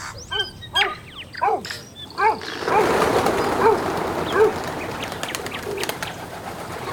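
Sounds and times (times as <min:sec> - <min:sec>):
several birds chirping and whistling: 0:00.0 - 0:06.9
rustling fluttering burst of wings: 0:02.3 - 0:06.9.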